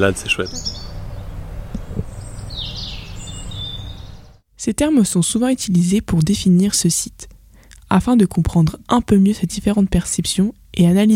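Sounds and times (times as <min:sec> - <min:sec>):
speech: 0:00.0 - 0:00.8, 0:04.6 - 0:07.3, 0:07.9 - 0:11.1
birds chirping and twittering outdoors: 0:00.0 - 0:04.4
low outdoor rumble: 0:00.0 - 0:11.1.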